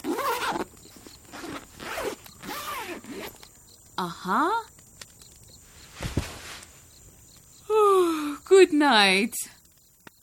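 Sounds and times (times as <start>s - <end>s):
sleeping bag zipper pulled in rasping strokes: 0.0s - 3.4s
rustle: 0.0s - 4.1s, 4.7s - 7.7s
speech: 4.0s - 4.7s, 8.6s - 9.5s.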